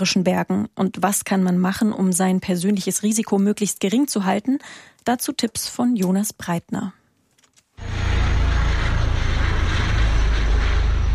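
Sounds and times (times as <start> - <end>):
speech: 0.0 - 7.0
helicopter flying overhead with rotor thumping: 7.8 - 11.1.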